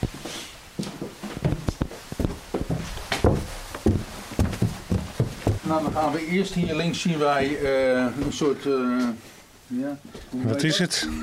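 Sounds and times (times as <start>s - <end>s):
hollow-sounding footsteps climbing a staircase: 0.0s - 8.4s
small creaks and knocks of staircase treads: 0.8s - 6.9s
speech: 5.7s - 11.2s.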